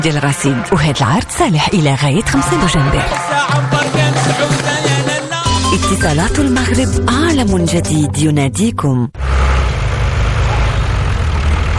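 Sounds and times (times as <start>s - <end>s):
speech: 0.0s - 4.9s, 5.7s - 9.4s
new tractor engine idling: 9.2s - 11.7s.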